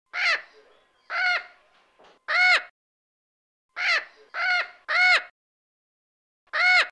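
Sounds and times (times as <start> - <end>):
crow cawing: 0.1 - 0.4, 1.1 - 1.6, 2.3 - 2.7, 3.8 - 5.3, 6.5 - 6.8.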